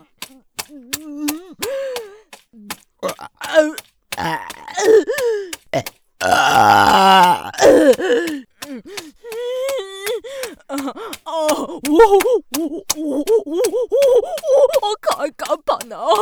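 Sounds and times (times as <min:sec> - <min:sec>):
mouth clicks: 0:00.0 - 0:16.1
person grunting and murmuring: 0:00.7 - 0:16.1
person burping: 0:03.0 - 0:08.4.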